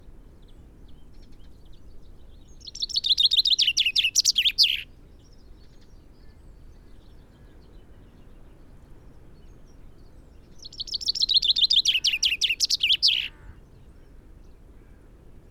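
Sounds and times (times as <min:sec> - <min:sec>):
common chaffinch Fringilla coelebs song: 0:01.0 - 0:05.9, 0:09.4 - 0:13.5.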